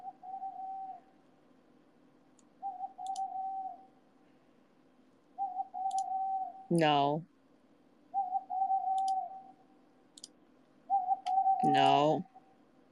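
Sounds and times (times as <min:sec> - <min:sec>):
owl hooting: 0:00.0 - 0:01.2, 0:02.6 - 0:04.0, 0:05.4 - 0:06.7, 0:08.1 - 0:09.7, 0:10.9 - 0:12.6
speech: 0:06.7 - 0:07.3, 0:11.8 - 0:12.3.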